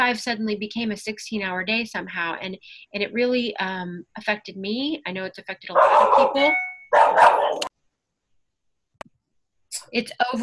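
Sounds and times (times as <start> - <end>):
speech: 0.0 - 7.7, 9.8 - 10.4
dog barking: 5.8 - 7.7.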